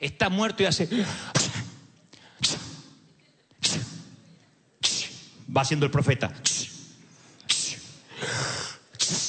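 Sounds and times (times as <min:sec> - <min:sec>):
speech: 0:00.0 - 0:01.4, 0:05.5 - 0:06.7
person imitating sneezing: 0:01.1 - 0:01.8, 0:02.4 - 0:02.9, 0:03.6 - 0:04.1, 0:04.8 - 0:05.4, 0:06.4 - 0:09.2.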